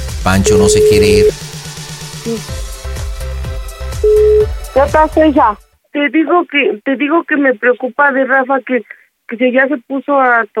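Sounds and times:
speech: 0:00.2 - 0:01.4, 0:02.3 - 0:02.7, 0:04.8 - 0:10.5
electronic telephone line tones while dialing a call: 0:00.4 - 0:01.3, 0:04.1 - 0:04.6
short repeated telephone beeps: 0:00.4 - 0:01.3, 0:04.1 - 0:04.5.

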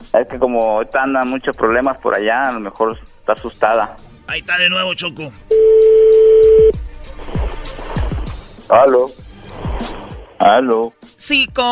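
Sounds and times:
speech: 0:00.2 - 0:06.7, 0:08.7 - 0:09.2, 0:10.4 - 0:11.7
steady telephone tone: 0:05.5 - 0:06.8.

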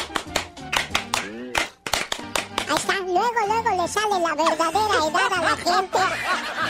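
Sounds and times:
rhythmic hand clapping at a party: 0:00.0 - 0:03.2
speech: 0:02.7 - 0:06.6
laughter: 0:04.5 - 0:06.6.

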